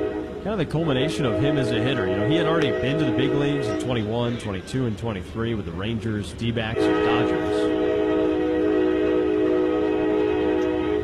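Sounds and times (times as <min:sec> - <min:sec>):
passing train horn blaring: 0:00.0 - 0:04.1, 0:06.7 - 0:11.0
faint rumbling from the rails: 0:00.0 - 0:11.0
speech: 0:00.4 - 0:07.9.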